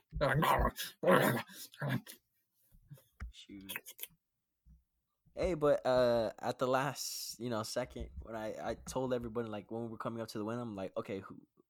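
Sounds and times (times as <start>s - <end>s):
speech: 0.2s - 2.2s, 3.4s - 4.2s, 5.4s - 11.5s
two dogs growling and snarling fighting over chicken: 0.2s - 2.2s.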